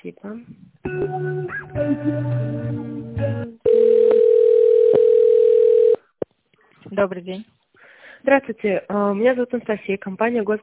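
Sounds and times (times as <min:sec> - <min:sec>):
speech: 0:00.0 - 0:02.6, 0:07.0 - 0:07.5, 0:08.2 - 0:10.6
phone-line sound: 0:03.7 - 0:06.0
steady telephone tone while an office call is being transferred: 0:03.7 - 0:06.1.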